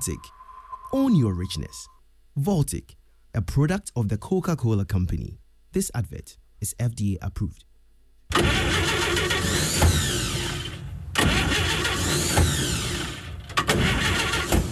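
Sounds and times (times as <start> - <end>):
speech: 0.0 - 7.7
car engine cranking without starting: 8.3 - 14.6.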